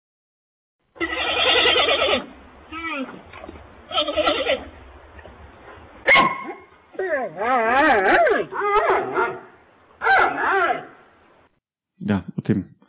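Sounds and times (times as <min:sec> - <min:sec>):
fox yelping barks and whining screams: 0:01.0 - 0:04.8, 0:06.0 - 0:11.1
speech: 0:12.1 - 0:12.8.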